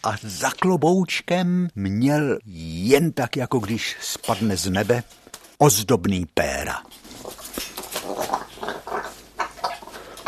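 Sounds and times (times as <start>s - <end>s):
speech: 0.0s - 7.0s
parrot growling and squawking while swinging on a knot: 7.0s - 10.2s.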